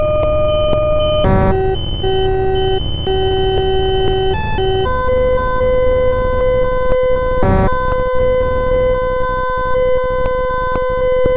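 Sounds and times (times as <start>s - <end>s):
noise: 0.0s - 11.3s.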